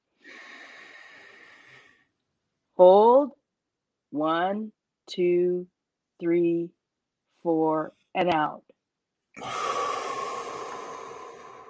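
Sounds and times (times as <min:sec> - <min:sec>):
deep breath drawn in during a breathing exercise: 0:00.0 - 0:02.1, 0:09.4 - 0:11.6
speech: 0:02.8 - 0:03.4, 0:04.1 - 0:06.8, 0:07.4 - 0:08.7.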